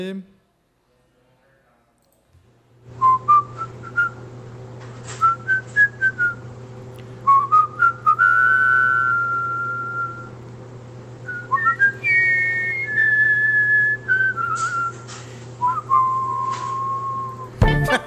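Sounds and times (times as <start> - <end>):
speech: 0.0 - 0.4
steady low hum: 2.8 - 18.0
person whistling an upbeat cartoon theme melody: 5.2 - 6.4, 7.2 - 10.3, 11.3 - 18.0.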